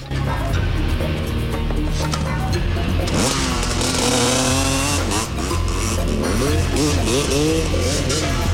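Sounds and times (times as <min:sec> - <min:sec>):
constant roar: 0:00.0 - 0:08.5
trail bike engine revving hard and racing off: 0:03.0 - 0:08.5.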